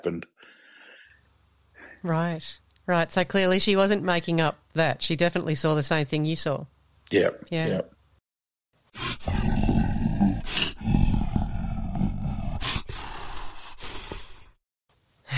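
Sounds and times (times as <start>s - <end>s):
speech: 0.0s - 0.6s, 2.0s - 7.9s
deep rumbling monster roar sound effect: 9.0s - 13.6s.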